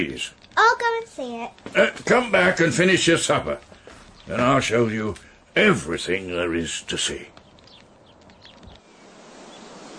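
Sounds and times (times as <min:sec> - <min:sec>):
speech: 0:00.0 - 0:07.4
wind rushing through trees: 0:07.0 - 0:09.9.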